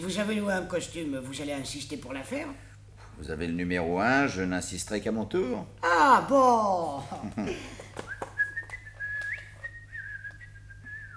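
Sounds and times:
speech: 0.0s - 7.8s
person whistling a faint high wavering melody: 8.0s - 11.1s.

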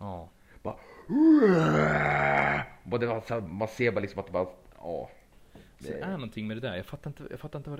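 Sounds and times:
speech: 0.6s - 2.2s, 2.9s - 5.2s, 5.8s - 7.7s
person imitating the death roar of a dinosaur: 1.1s - 2.8s.

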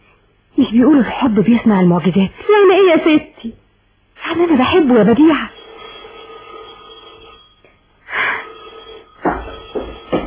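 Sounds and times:
steady low hum: 0.0s - 10.2s
speech: 0.7s - 3.6s, 4.3s - 5.6s
telephone ringing: 4.5s - 10.2s.

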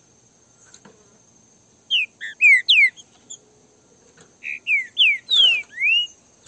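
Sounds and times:
Green-winged Saltator song in a song dispute: 1.9s - 3.4s, 4.4s - 6.2s.

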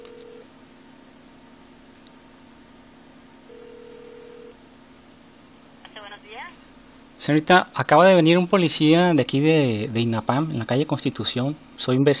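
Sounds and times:
telephone ring tone beeps: 0.0s - 0.4s, 3.5s - 4.6s
speech: 6.3s - 12.1s.

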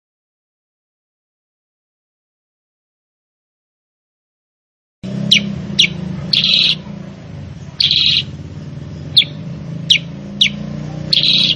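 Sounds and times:
sooty-headed bulbul singing for training cage birds: 5.0s - 11.5s.

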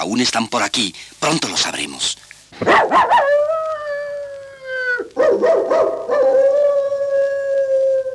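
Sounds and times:
speech: 0.0s - 3.5s
Great Dane barking: 2.6s - 3.4s, 5.2s - 6.4s
Great Dane howling: 2.6s - 8.1s.

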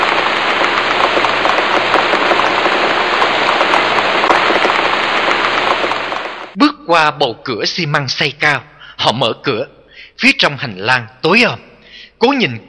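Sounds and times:
steady rain pattering on a surface outside an old administration building: 0.0s - 6.6s
speech: 6.9s - 12.6s.

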